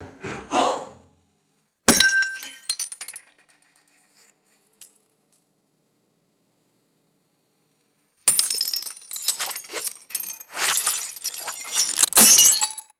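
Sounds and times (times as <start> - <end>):
thin glass light bulb shattering: 1.9 - 3.3, 8.3 - 12.9
thin glass light bulb scraping: 8.5 - 12.8.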